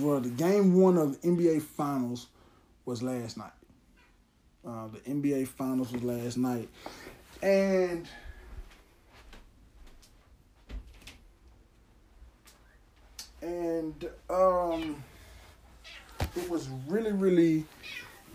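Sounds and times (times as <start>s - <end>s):
speech: 0.0s - 3.6s, 4.6s - 8.2s, 13.4s - 15.1s, 16.4s - 18.3s
cat meowing in a room: 15.7s - 16.5s, 17.8s - 18.3s.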